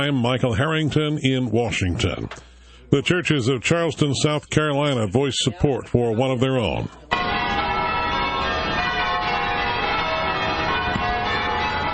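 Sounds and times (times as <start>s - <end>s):
speech: 0.0s - 7.2s
church bells pealing: 7.1s - 11.9s.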